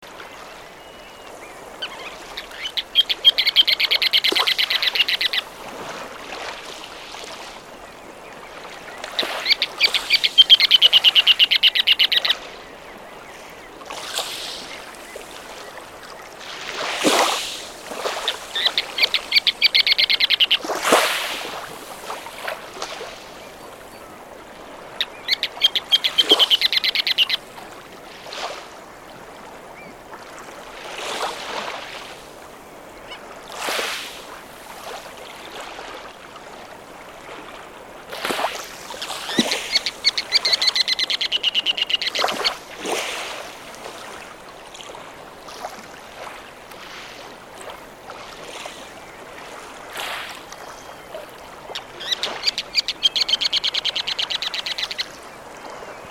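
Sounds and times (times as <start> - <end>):
Ruddy Turnstone Arenaria interpres shorebird: 0.1 - 6.0, 7.6 - 28.6, 32.8 - 33.6, 38.1 - 44.5, 48.4 - 56.0.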